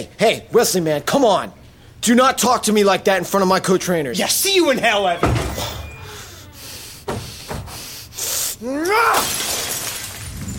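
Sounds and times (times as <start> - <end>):
speech: 0.0 - 5.8, 8.6 - 9.4
brief rising squeal: 5.5 - 6.8
glass fishbowl smashing: 9.1 - 10.5
crunching tinkling glass debris: 9.2 - 10.5.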